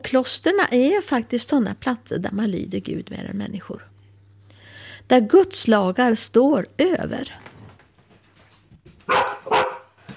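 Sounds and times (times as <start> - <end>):
speech: 0.0 - 3.9, 5.1 - 7.5
dog barking loudly: 9.1 - 10.0.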